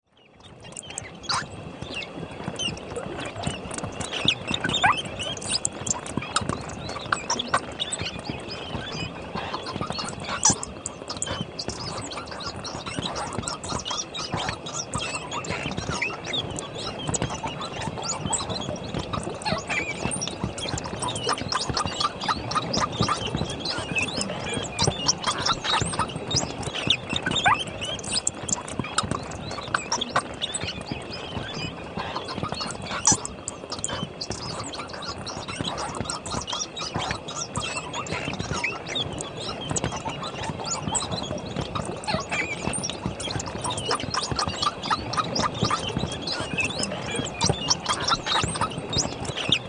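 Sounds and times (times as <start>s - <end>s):
colony of bats: 0.6s - 49.6s.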